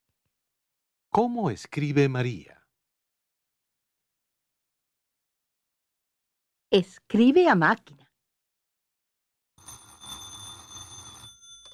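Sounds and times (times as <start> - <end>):
speech: 1.2 - 2.6, 6.7 - 8.0
old-style telephone bell ringing with a metallic trill: 9.6 - 11.7.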